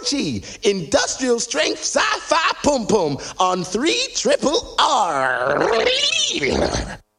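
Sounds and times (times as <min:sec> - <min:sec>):
speech: 0:00.1 - 0:07.0
cat yowling: 0:05.1 - 0:07.0.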